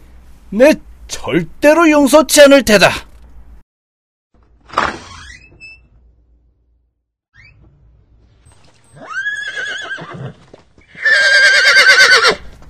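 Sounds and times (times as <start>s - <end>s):
speech: 0.5s - 3.1s
soft horse hoofbeats clopping: 8.5s - 12.6s
horse neighing: 8.9s - 12.5s.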